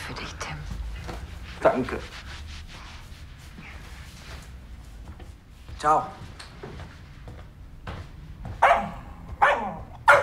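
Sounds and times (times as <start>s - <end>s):
speech: 1.6s - 2.2s, 5.8s - 6.3s
dog barking: 8.6s - 10.2s.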